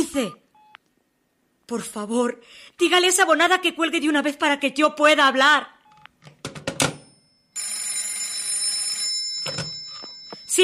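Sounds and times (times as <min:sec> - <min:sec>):
speech: 0:00.1 - 0:00.4, 0:01.7 - 0:05.8
telephone bell ringing: 0:06.9 - 0:10.6.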